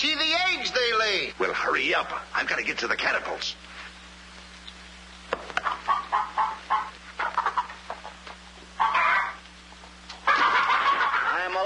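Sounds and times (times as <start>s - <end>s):
speech: 0.0s - 0.5s, 1.3s - 3.7s
chickens clucking: 5.4s - 9.4s, 10.1s - 11.3s
chicken squawks: 5.6s - 8.2s, 8.8s - 9.4s
laughter: 10.2s - 11.6s.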